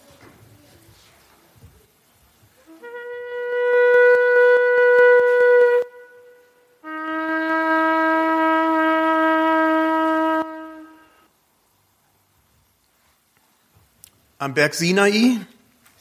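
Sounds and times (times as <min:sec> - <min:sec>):
traditional Jewish shofar horn blasts: 0:02.7 - 0:11.3
speech: 0:14.4 - 0:15.5.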